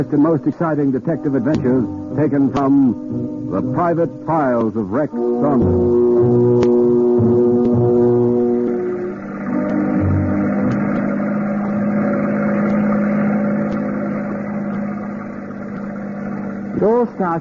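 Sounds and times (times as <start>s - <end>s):
speech: 0.0s - 7.3s, 16.8s - 17.3s
speedboat engine droning alongside a ship: 0.0s - 17.3s.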